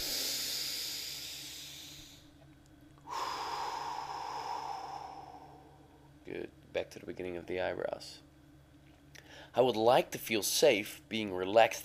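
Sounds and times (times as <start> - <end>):
person breathing deeply during a calming relaxation exercise: 0.0 - 2.3, 3.0 - 6.1
speech: 6.3 - 8.3, 9.5 - 11.8.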